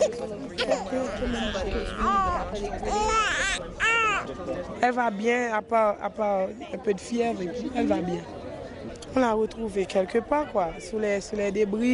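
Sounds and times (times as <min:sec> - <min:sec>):
murmur of adult voices at a clinic: 0:00.0 - 0:11.9
baby crying at a clinic check-up: 0:00.6 - 0:04.2
speech: 0:00.6 - 0:08.4, 0:09.2 - 0:11.9.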